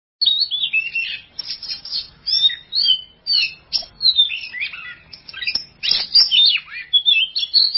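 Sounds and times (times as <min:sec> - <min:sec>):
Oriental magpie-robin song of clear whistled slurs: 0:00.2 - 0:07.7.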